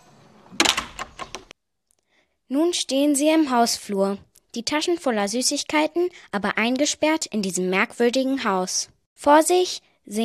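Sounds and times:
door falling shut in a house: 0:00.3 - 0:01.5
speech: 0:02.5 - 0:10.2.

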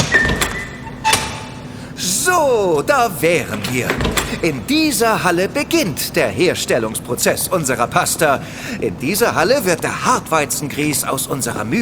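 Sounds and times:
door opening into a pasta production hall: 0:00.0 - 0:01.9, 0:03.4 - 0:05.2
faint steady hum: 0:00.0 - 0:11.7
speech: 0:02.3 - 0:11.7.

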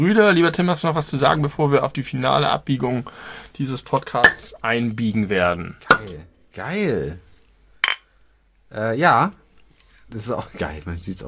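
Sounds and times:
speech: 0:00.0 - 0:07.3, 0:08.7 - 0:09.4, 0:10.1 - 0:11.2
glasses clinking in a toast: 0:04.2 - 0:04.5, 0:05.9 - 0:06.2, 0:07.8 - 0:08.1.

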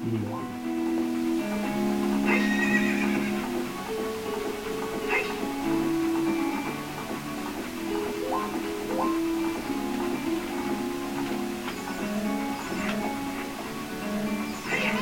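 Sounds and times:
horse hooves clip-clopping: 0:00.0 - 0:15.0
horse neighing: 0:02.2 - 0:03.6, 0:05.1 - 0:05.6.

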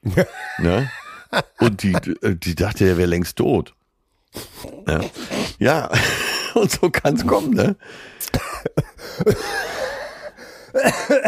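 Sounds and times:
laughter: 0:00.1 - 0:02.3, 0:05.9 - 0:07.5, 0:08.4 - 0:11.2
speech: 0:00.1 - 0:09.7
raspy breaths: 0:04.4 - 0:06.6, 0:07.8 - 0:08.3, 0:09.0 - 0:10.8
person coughing after choking on a drink: 0:08.2 - 0:09.8, 0:10.7 - 0:11.2.

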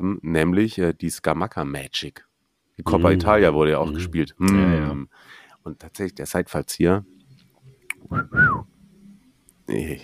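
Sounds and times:
speech: 0:00.0 - 0:07.2, 0:08.0 - 0:08.7, 0:09.7 - 0:10.0
person whistling a two-note phrase: 0:07.9 - 0:08.7.

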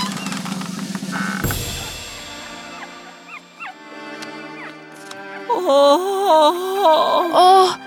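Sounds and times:
puppies whimpering sadly: 0:02.7 - 0:04.9
speech: 0:05.7 - 0:07.8.

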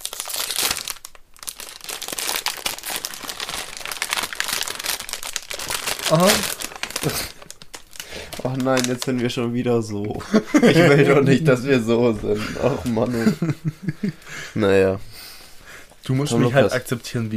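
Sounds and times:
plastic snack bag being opened and crinkled: 0:00.0 - 0:09.2
person exclaiming: 0:06.1 - 0:07.3
speech: 0:06.1 - 0:07.4, 0:08.4 - 0:15.1, 0:16.0 - 0:17.3
laughter: 0:10.2 - 0:14.7.

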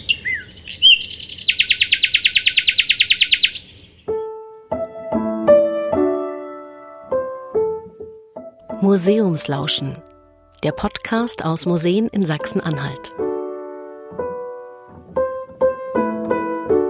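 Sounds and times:
nightingale singing: 0:00.0 - 0:04.2
plucked musical tones: 0:04.1 - 0:16.8
speech: 0:08.8 - 0:13.2.

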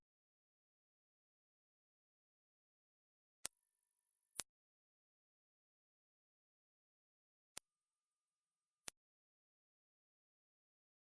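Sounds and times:
high-pitched smartphone ringtone beeps made for children: 0:03.5 - 0:04.4, 0:07.6 - 0:08.9.

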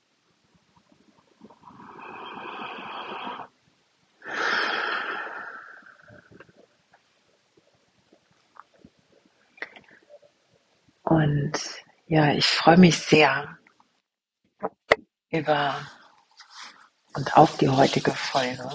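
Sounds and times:
faint small clicks and rustles: 0:00.2 - 0:02.3, 0:06.0 - 0:11.1, 0:15.8 - 0:18.7
deep breath: 0:01.6 - 0:03.5, 0:04.2 - 0:06.6
speech: 0:11.2 - 0:13.6, 0:15.3 - 0:16.0, 0:17.2 - 0:18.7.

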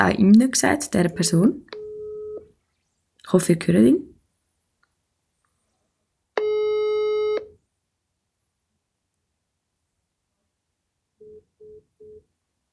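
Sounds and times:
speech: 0:00.0 - 0:01.8, 0:03.3 - 0:04.1
telephone busy tone after a call is rejected: 0:01.8 - 0:02.4, 0:06.4 - 0:07.5.

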